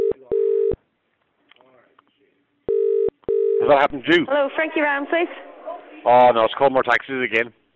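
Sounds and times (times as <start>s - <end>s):
electronic phone dialing tones: 0.0s - 0.8s, 2.7s - 3.6s
speech: 3.7s - 7.7s.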